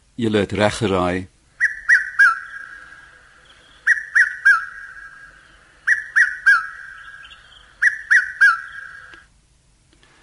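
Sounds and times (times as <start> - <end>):
speech: 0.2 - 1.3
red-chested cuckoo three-note whistled call: 1.6 - 9.3.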